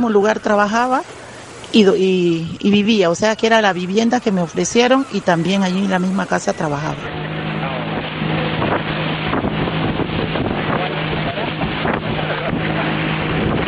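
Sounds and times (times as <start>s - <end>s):
speech: 0.0s - 7.3s
motorboat engine droning on water: 0.0s - 13.6s
rushing water: 0.0s - 13.6s
gusty wind buffeting the microphone: 6.8s - 13.6s.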